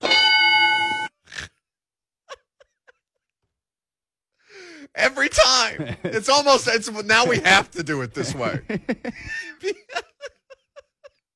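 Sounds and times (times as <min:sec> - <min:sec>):
single bright bell ding: 0:00.0 - 0:01.1
speech: 0:05.0 - 0:10.1
laughter: 0:05.6 - 0:11.2.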